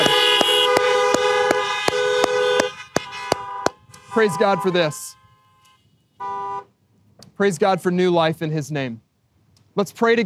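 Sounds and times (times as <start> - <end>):
several car horns honking in celebration: 0.0 - 6.8
speech: 4.2 - 5.2, 7.4 - 9.0, 9.8 - 10.2.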